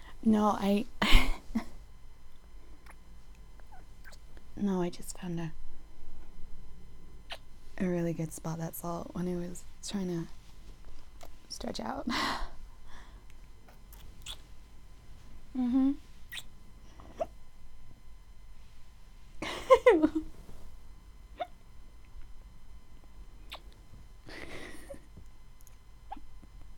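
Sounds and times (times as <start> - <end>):
speech: 0.2 - 1.6, 4.6 - 5.6, 7.8 - 10.4, 11.5 - 12.5, 15.6 - 16.5
hiccups: 16.3 - 17.4, 21.4 - 21.6, 26.1 - 26.3.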